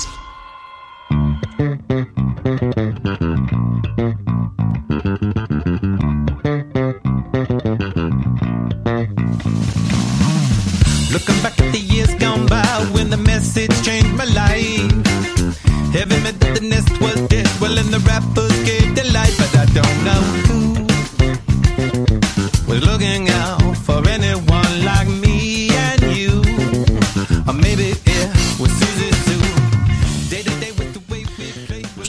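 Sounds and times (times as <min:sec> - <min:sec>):
guitar playing: 0:00.1 - 0:32.0
punchy funk rock bass line: 0:01.1 - 0:32.0
drums playing: 0:09.3 - 0:32.0.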